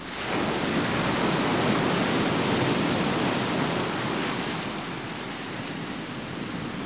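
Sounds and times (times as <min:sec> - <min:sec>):
water: 0:00.0 - 0:06.8.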